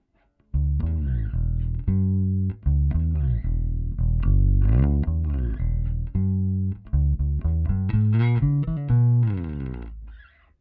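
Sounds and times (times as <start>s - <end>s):
solo electric bass with neck pickup playing melodic line: 0.5s - 10.5s.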